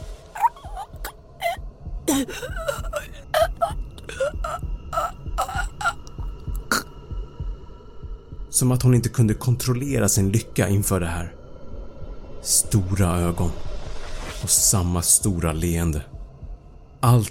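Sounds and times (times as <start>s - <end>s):
woman hiccuping quietly in the throat: 0.4s - 6.9s
speech: 2.1s - 2.9s, 8.6s - 11.4s, 12.5s - 13.7s, 14.4s - 16.1s, 17.0s - 17.2s.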